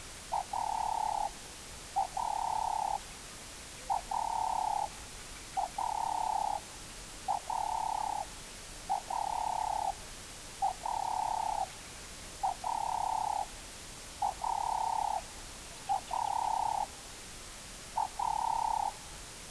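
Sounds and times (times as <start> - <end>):
Streptopelia capicola cooing: 0.3 - 3.0, 3.8 - 4.9, 5.6 - 8.3, 8.9 - 10.0, 10.6 - 11.8, 12.4 - 13.6, 14.2 - 17.0, 18.0 - 19.1.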